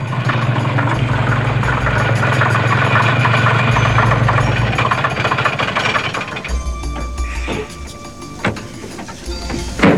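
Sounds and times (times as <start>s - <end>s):
heavy truck engine idling with rattling clatter: 0.0s - 9.9s.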